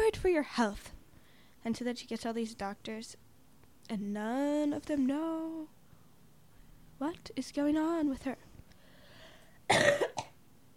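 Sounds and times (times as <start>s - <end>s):
speech: 0.2s - 0.9s, 1.6s - 3.2s, 3.8s - 5.8s, 7.0s - 8.5s, 9.7s - 10.0s
person coughing harshly: 9.7s - 10.4s.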